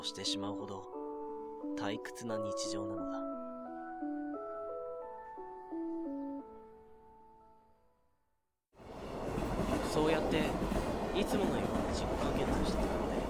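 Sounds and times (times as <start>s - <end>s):
speech: 0.0s - 1.0s, 1.6s - 3.4s, 11.2s - 12.3s
soft melodic tune: 0.0s - 8.3s
train passing at a railway crossing: 8.8s - 13.2s.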